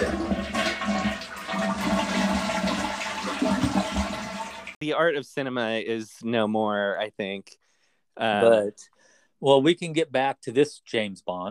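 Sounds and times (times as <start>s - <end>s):
toilet flushing: 0.0s - 4.8s
speech: 5.0s - 7.6s, 8.2s - 11.5s.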